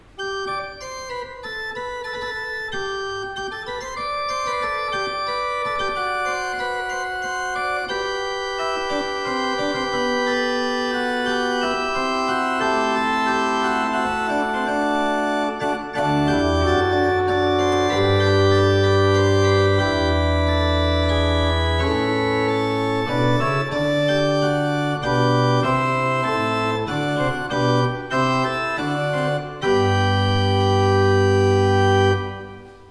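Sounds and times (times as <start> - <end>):
used organ playing: 0.0 - 32.8.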